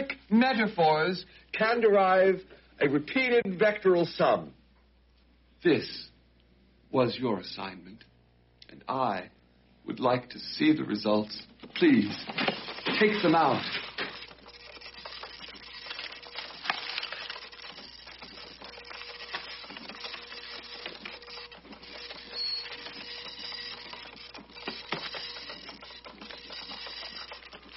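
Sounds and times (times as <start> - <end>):
speech: 0.3 - 4.6, 5.6 - 6.1, 6.9 - 8.1, 8.7 - 13.8
dot matrix printer printing: 11.6 - 27.7.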